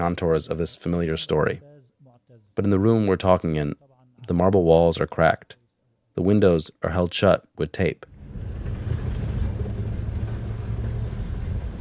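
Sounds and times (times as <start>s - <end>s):
speech: 0.0s - 1.7s, 2.6s - 5.6s, 6.2s - 8.1s
old Mercedes car engine rumble heard from inside the cabin: 8.1s - 11.7s
road drone: 8.1s - 11.7s.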